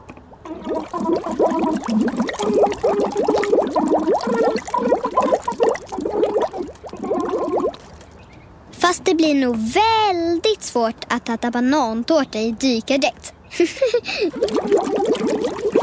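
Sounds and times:
underwater bubbling: 0:00.4 - 0:08.2, 0:14.3 - 0:15.8
speech: 0:00.5 - 0:04.9, 0:08.9 - 0:15.0.

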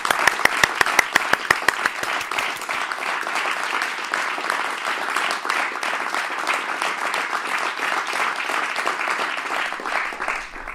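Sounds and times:
crowd applause: 0:00.0 - 0:10.7.

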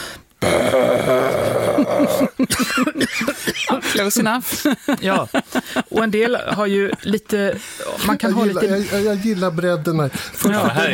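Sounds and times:
vocal growl made with the false vocal folds: 0:00.4 - 0:02.2
person coughing: 0:01.6 - 0:04.1
laughter: 0:02.4 - 0:07.3, 0:10.4 - 0:10.9
speech: 0:02.4 - 0:10.9.

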